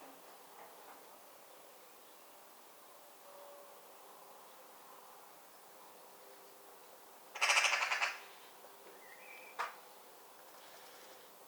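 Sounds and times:
Eurasian magpie Pica pica chattering rattle: 7.4 - 8.2.

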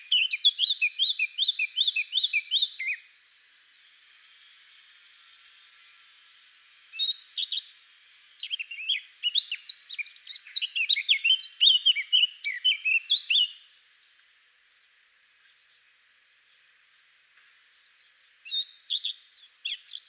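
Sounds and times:
Eurasian blackcap Sylvia atricapilla warbling song: 0.0 - 3.4, 6.9 - 14.8, 17.7 - 20.0.

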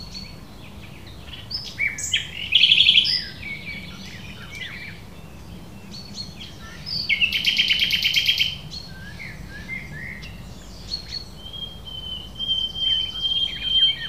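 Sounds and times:
common nightingale Luscinia megarhynchos song: 0.0 - 14.0.

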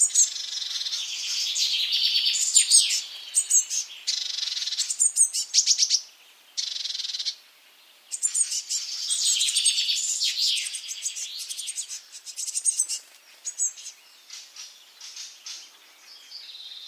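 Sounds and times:
Eurasian blue tit Cyanistes caeruleus calls: 0.0 - 7.4, 8.1 - 16.8.

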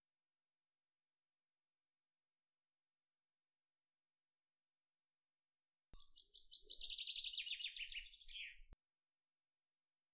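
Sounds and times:
common chaffinch song, Fringilla coelebs: 6.0 - 8.8.

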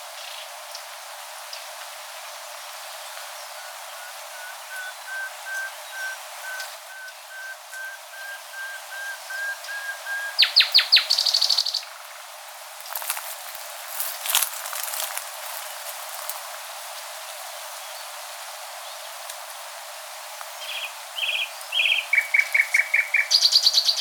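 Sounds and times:
Common nightingale Luscinia megarhynchos singing: 3.4 - 12.1, 20.6 - 23.9.

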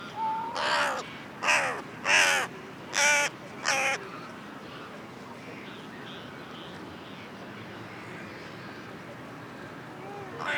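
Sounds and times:
Carrion crow Corvus corone giving harsh grating caws: 0.6 - 4.0.

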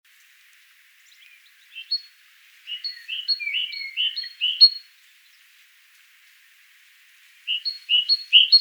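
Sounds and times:
great tit Parus major singing a see-saw phrase: 1.2 - 4.9, 7.5 - 8.5.

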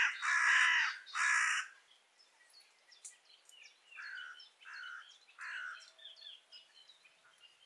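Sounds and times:
Corvus corone carrion crow cawing: 0.0 - 1.8, 4.0 - 5.9
small birds chirping: 0.0 - 7.6.

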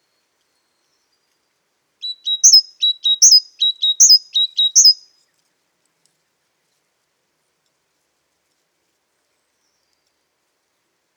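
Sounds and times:
Great tit song: 2.0 - 5.1.

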